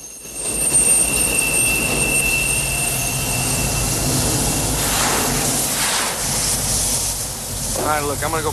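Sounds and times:
thin metallic squeal of train wheels: 0.0s - 5.4s
train rumbling past on an elevated track: 0.0s - 8.5s
speech: 8.0s - 8.5s.

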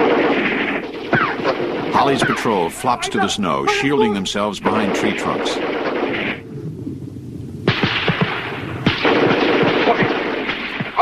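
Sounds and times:
rifle gunfire in snowy woods: 0.0s - 3.0s, 4.6s - 6.4s, 7.6s - 10.9s
speech: 2.0s - 5.7s.

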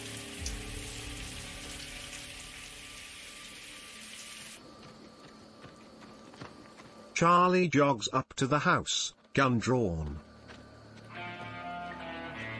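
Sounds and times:
shower running: 0.0s - 4.6s
speech: 7.2s - 10.3s.

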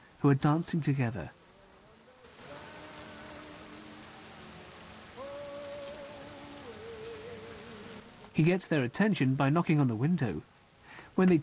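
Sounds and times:
pouring rain on a street: 0.0s - 11.4s
speech: 0.2s - 1.4s, 8.4s - 10.5s, 11.2s - 11.4s
faint sustained melodic tones: 1.3s - 10.0s.

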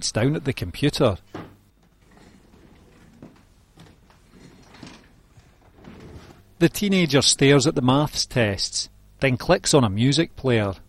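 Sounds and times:
speech: 0.0s - 1.5s, 6.6s - 10.8s
drawer sliding shut with scraping and knocking: 1.3s - 6.5s.

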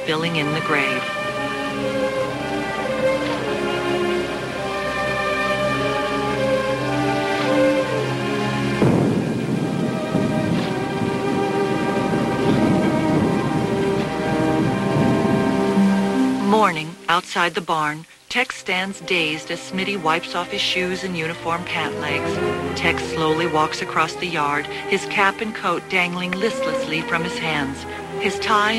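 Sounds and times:
heavy rain streaming down the sides of a barn: 0.0s - 28.7s
speech: 0.1s - 2.2s, 16.5s - 28.7s
deep rumble of thunder: 7.1s - 16.1s.

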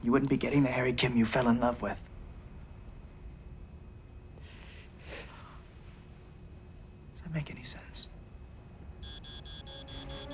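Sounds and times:
speech: 0.0s - 2.1s, 7.3s - 8.1s
tampering alarm beeping rapidly: 9.0s - 10.3s.

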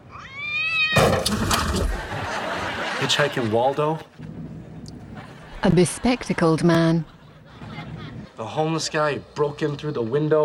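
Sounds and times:
cat meowing: 0.0s - 1.2s
laughter: 1.5s - 4.1s, 5.0s - 8.8s
speech: 3.0s - 4.2s, 5.6s - 7.1s, 8.4s - 10.4s.

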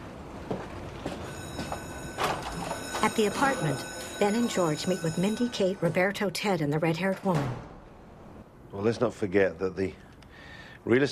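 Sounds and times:
door opening and shutting with soft clunks and a thud: 2.1s - 3.3s, 7.0s - 8.0s
speech: 3.0s - 7.7s, 8.7s - 10.0s, 10.8s - 11.1s.

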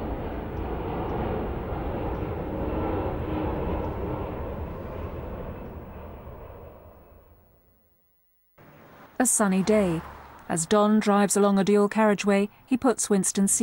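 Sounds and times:
jet airplane roaring through takeoff: 0.0s - 7.6s, 8.6s - 11.2s
speech: 9.2s - 13.6s.

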